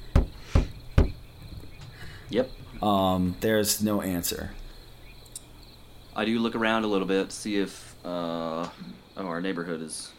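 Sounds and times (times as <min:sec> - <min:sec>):
knocking on a door: 0:00.0 - 0:01.8
speech: 0:02.3 - 0:04.6, 0:06.2 - 0:10.1.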